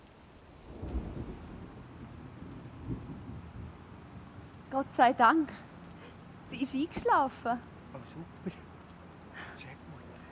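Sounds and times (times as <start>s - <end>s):
steady rain: 0.0s - 10.2s
low rolling thunder: 0.3s - 4.1s
speech: 4.8s - 5.7s, 6.6s - 8.6s.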